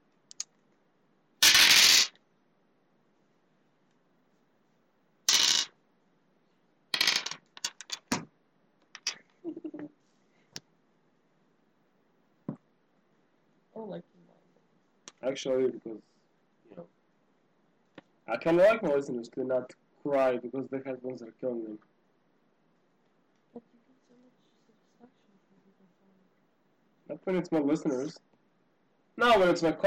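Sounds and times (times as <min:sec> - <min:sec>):
dice clattering across a hard surface: 0:01.4 - 0:02.2, 0:05.3 - 0:05.7, 0:06.9 - 0:08.2, 0:09.0 - 0:09.2
speech: 0:15.2 - 0:16.1, 0:18.3 - 0:21.9, 0:27.2 - 0:28.3, 0:29.2 - 0:29.8.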